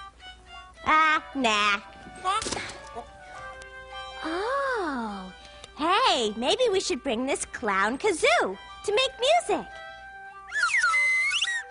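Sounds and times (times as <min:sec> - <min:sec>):
speech: 0:00.9 - 0:03.2, 0:04.2 - 0:09.8
rubber chicken toy squawking: 0:10.5 - 0:11.6.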